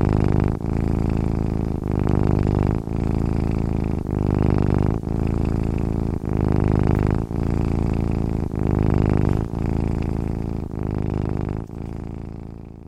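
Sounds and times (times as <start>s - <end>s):
domestic cat purring: 0.0s - 12.8s.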